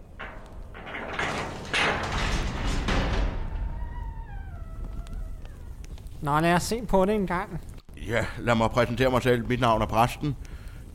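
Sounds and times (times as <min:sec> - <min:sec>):
gate scraping open: 0:00.0 - 0:06.2
speech: 0:06.2 - 0:10.9.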